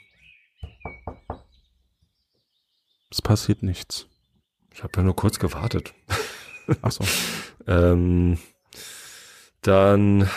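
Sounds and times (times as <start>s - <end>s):
birds chirping: 0.0s - 10.3s
knocking on a door: 0.6s - 1.6s
speech: 3.1s - 4.1s, 4.8s - 9.0s, 9.6s - 10.3s
laughter: 6.1s - 7.6s.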